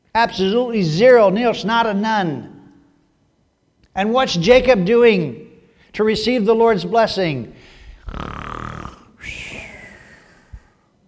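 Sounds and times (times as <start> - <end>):
speech: 0.2 - 2.5, 4.0 - 8.5
person imitating snoring: 8.0 - 10.8.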